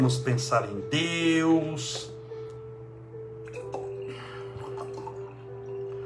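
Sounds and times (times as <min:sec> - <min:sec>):
speech: 0:00.0 - 0:02.1
steady low electrical hum: 0:00.0 - 0:06.0
water pouring into a glass: 0:03.5 - 0:06.0.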